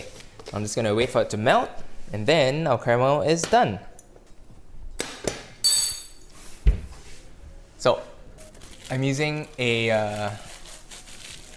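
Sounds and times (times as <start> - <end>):
speech: 0.5 - 3.9, 7.8 - 8.1, 8.9 - 10.5
silicone baking mat crinkling while making caramel: 8.4 - 11.5.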